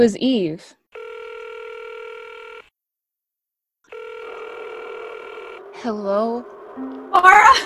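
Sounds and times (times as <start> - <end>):
speech: 0.0 - 0.8, 5.8 - 7.6
steady electronic telephone ringing tone: 0.9 - 2.7, 3.9 - 5.8.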